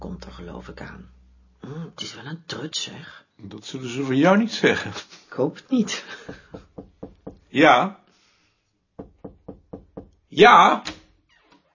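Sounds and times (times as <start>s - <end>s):
speech: 0.4s - 6.7s, 7.5s - 8.0s, 10.4s - 11.0s
firm knocking on an office door: 6.2s - 7.5s, 9.0s - 10.2s.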